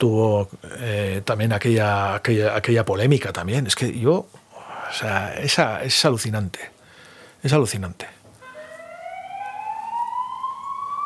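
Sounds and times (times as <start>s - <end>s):
speech: 0.0s - 6.8s, 7.4s - 8.2s
wailing emergency siren outside: 8.4s - 11.0s.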